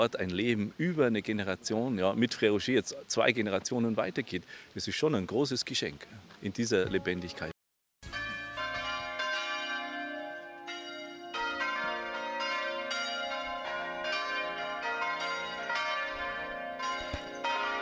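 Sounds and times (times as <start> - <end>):
speech: 0.0 - 7.5
church bells in Tessé ringing in an overlapping peal: 8.0 - 17.8.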